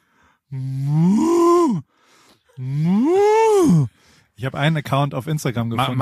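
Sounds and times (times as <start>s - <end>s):
speech: 0.5s - 0.9s, 4.4s - 6.0s
person imitating a cow mooing: 0.5s - 1.8s, 2.6s - 3.9s.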